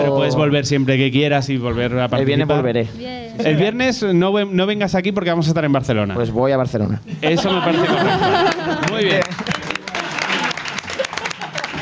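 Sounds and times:
speech: 0.3 - 9.5
laughter: 7.2 - 11.8
audience applause: 7.9 - 11.8.

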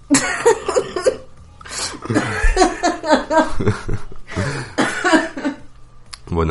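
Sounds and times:
ill woman having a coughing fit: 0.1 - 2.8, 4.7 - 5.6
laughter: 0.1 - 5.7
speech: 2.1 - 4.5
strained breaths: 4.3 - 4.8.

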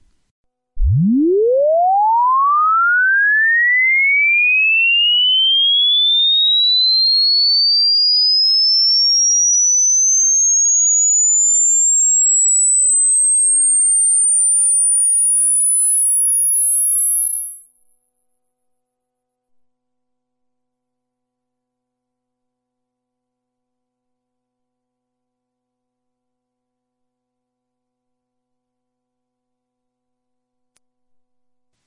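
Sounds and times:
rising pure sine tone from a hearing age test: 0.8 - 17.8.

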